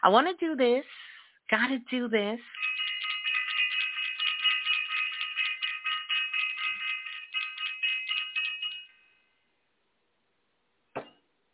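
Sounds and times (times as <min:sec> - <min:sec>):
speech: 0:00.0 - 0:02.7
bright bell ringing rapidly: 0:02.5 - 0:09.2.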